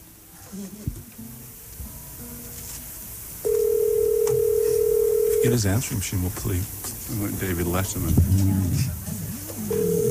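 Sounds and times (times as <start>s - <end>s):
noisy background: 0.0s - 10.0s
speech: 0.6s - 1.4s, 5.4s - 9.0s
telephone number dialing tones: 3.5s - 5.6s, 9.7s - 10.0s.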